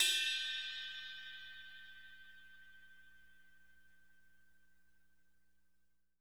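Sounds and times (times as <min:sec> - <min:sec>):
crash cymbal: 0:00.0 - 0:03.1.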